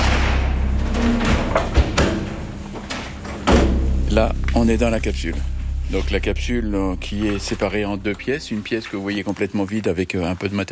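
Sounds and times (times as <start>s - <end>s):
heavy armored blast door weighing several tonnes closing with thud: 0.0s - 4.1s
metallic knocks: 0.0s - 4.1s
low rumble: 0.0s - 9.5s
speech: 4.2s - 10.6s.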